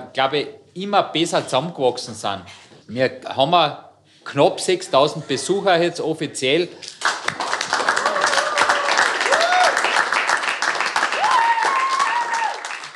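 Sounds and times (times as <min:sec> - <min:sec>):
speech: 0:00.2 - 0:07.0
crowd applauding at aftershow party: 0:06.9 - 0:12.9
whoops and cheering voices at aftershow party: 0:08.0 - 0:10.0, 0:11.0 - 0:12.9.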